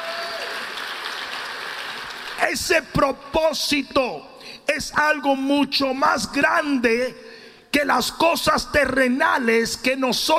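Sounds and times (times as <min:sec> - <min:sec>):
congregation applause during a church service: 0:00.0 - 0:03.0
speech: 0:02.4 - 0:07.2, 0:07.8 - 0:10.3.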